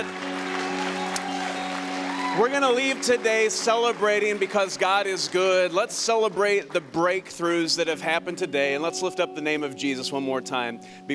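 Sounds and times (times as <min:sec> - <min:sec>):
audience applause: 0:00.0 - 0:07.8
speech: 0:02.4 - 0:11.1.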